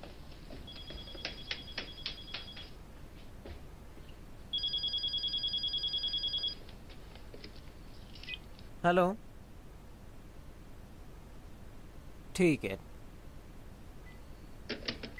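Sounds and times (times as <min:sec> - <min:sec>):
telephone bell ringing: 0:00.7 - 0:02.7, 0:04.5 - 0:06.6
speech: 0:08.8 - 0:09.3, 0:12.4 - 0:12.9.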